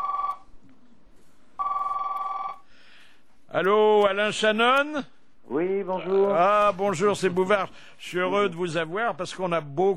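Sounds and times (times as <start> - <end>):
telephone ringback tone on an outgoing call: 0.0 - 0.4, 1.6 - 2.6
faint hiss: 0.0 - 9.9
speech: 3.6 - 9.9.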